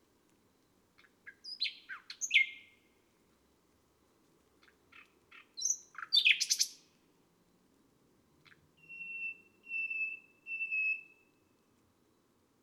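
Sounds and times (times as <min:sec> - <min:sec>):
nightingale song: 0:00.5 - 0:02.9, 0:04.6 - 0:07.0, 0:08.4 - 0:11.6.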